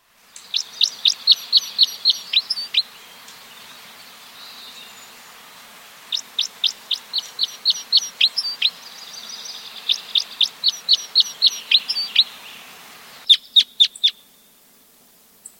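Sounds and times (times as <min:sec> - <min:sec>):
red crossbill calling: 0:00.4 - 0:03.4, 0:06.1 - 0:14.3.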